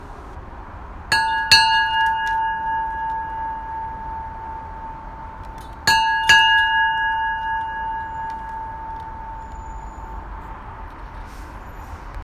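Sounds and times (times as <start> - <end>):
Coast Guard bell ringing: 1.1 - 10.4.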